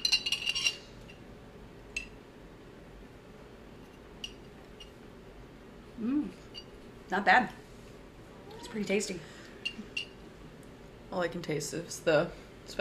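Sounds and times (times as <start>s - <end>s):
spoon stirring a drink and clinking glass: 0.0s - 0.8s
speech: 7.1s - 7.6s, 8.7s - 9.3s, 11.1s - 12.7s.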